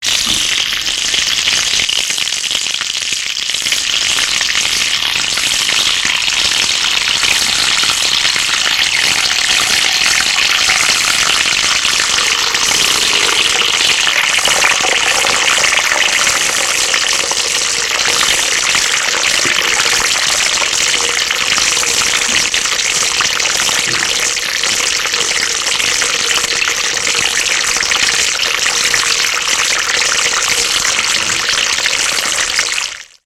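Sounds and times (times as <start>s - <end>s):
very greasy bacon frying: 0.0s - 33.2s.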